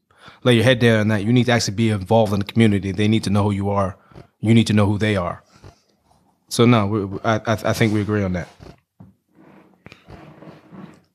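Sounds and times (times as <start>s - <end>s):
speech: 0.4s - 5.5s, 6.5s - 8.8s
chair creaking and groaning: 8.4s - 11.1s.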